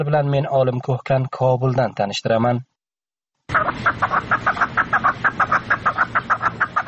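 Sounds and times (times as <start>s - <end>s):
speech: 0.0s - 2.7s
fighting partridges calling in northern Afghanistan: 3.5s - 6.8s.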